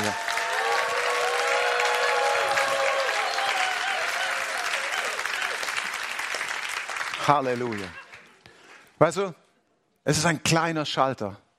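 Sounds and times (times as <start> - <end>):
audience clapping during a church conference service of praise: 0.0 - 9.0
speech: 7.2 - 8.0, 9.0 - 9.4, 10.0 - 11.4.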